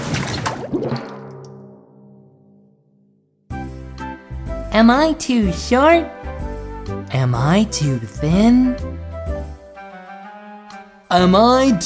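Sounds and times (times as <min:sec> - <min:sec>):
water splashing: 0:00.0 - 0:01.8
speech: 0:04.8 - 0:06.2, 0:07.1 - 0:08.9, 0:11.1 - 0:11.8.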